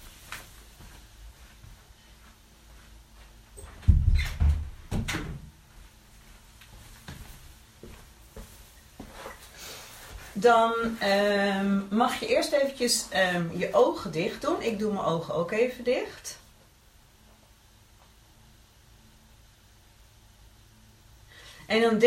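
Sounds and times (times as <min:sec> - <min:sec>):
door pushed shut with a muffled low thud: 0:03.8 - 0:05.5
speech: 0:10.4 - 0:16.4, 0:21.7 - 0:22.0.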